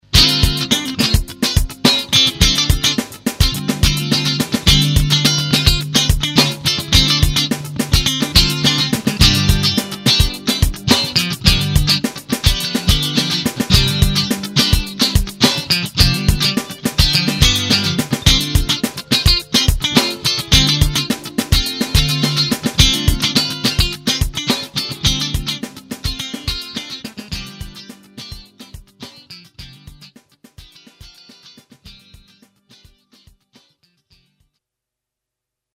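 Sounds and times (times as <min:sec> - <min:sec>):
clean guitar through a Crate GT65 amplifier: 0:00.0 - 0:33.3.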